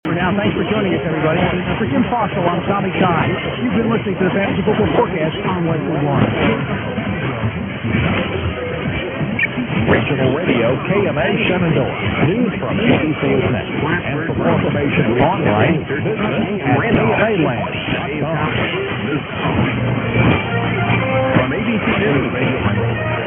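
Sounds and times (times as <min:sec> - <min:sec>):
960 medium wave radio DX reception: 0:00.0 - 0:20.6, 0:21.2 - 0:23.2.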